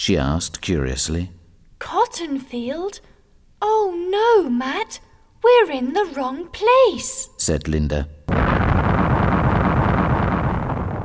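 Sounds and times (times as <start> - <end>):
speech: 0.0 - 8.2
loud explosion sound effect: 8.3 - 11.0.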